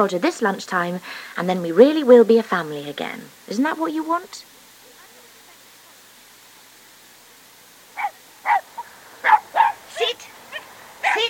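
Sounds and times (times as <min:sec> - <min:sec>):
speech: 0:00.0 - 0:04.5
all-black sheepdog barking: 0:08.0 - 0:11.2.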